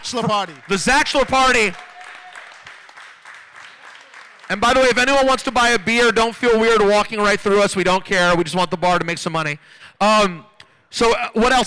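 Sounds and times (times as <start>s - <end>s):
live audience applauding: 0.0s - 5.5s
speech: 0.1s - 1.9s, 4.5s - 11.6s.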